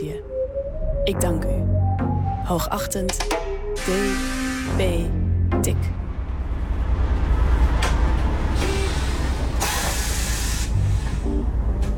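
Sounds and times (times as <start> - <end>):
speech: 0.0 - 6.0
bus engine rumble: 5.7 - 11.9
bus air brakes hissing: 8.6 - 11.1.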